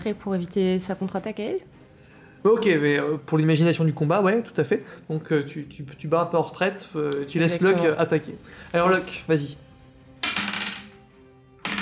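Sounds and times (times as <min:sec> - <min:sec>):
speech: 0:00.0 - 0:01.8, 0:02.4 - 0:09.6
dice rolled slowly in a tabletop role-playing game: 0:10.2 - 0:10.9, 0:11.6 - 0:11.8.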